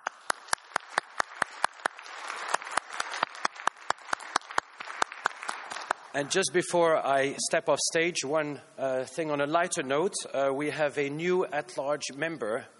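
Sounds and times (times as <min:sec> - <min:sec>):
sharp individual claps: 0:00.0 - 0:06.2
crowd applauding: 0:00.0 - 0:06.3
speech: 0:06.1 - 0:12.7.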